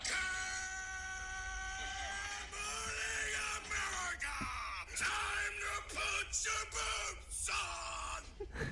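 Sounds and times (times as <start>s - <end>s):
man yelling loudly in a recording played as a phone alarm: 0.0s - 8.3s.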